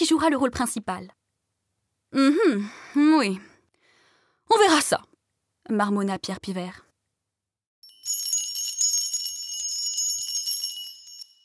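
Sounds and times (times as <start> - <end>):
speech: 0.0 - 1.2, 2.1 - 3.5, 4.5 - 6.8
electric school bell ringing: 7.8 - 11.4.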